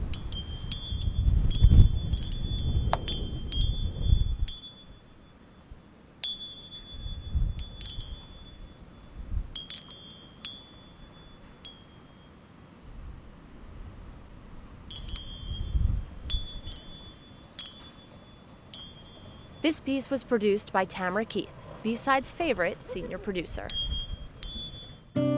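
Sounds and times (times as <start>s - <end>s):
metallic wind chime tinkling on a porch: 0.0s - 12.5s, 14.9s - 20.2s, 22.6s - 25.2s
soft low rumble of wind: 0.0s - 25.2s
speech: 19.6s - 23.8s.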